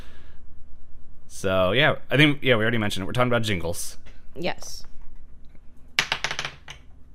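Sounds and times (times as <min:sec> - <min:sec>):
speech: 0:01.4 - 0:04.9
dice rolled to determine turn order clattering across a hard surface: 0:06.0 - 0:06.9.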